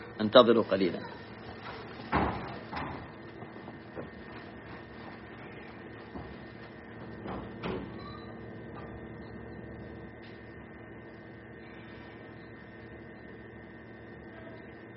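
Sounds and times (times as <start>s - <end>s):
steady low room hum: 0.0s - 14.9s
speech: 0.2s - 1.2s
door thudding shut: 2.1s - 3.1s.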